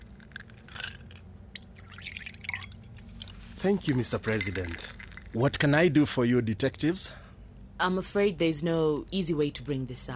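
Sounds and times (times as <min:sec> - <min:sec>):
whiskey poured into a glass in an office: 0:01.6 - 0:05.3
speech: 0:03.6 - 0:07.2, 0:07.8 - 0:10.1.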